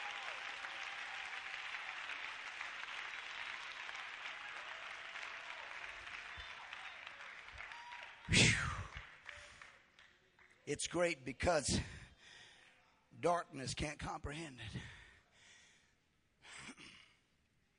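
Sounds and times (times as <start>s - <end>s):
audience clapping hands in worship: 0.0s - 11.1s
speech: 10.7s - 12.0s, 13.2s - 14.9s.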